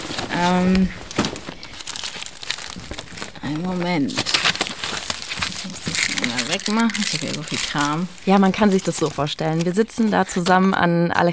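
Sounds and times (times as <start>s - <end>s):
papers rustling and crinkling as someone rummages: 0.0s - 11.3s
speech: 0.4s - 1.0s, 3.5s - 4.4s, 5.6s - 11.3s.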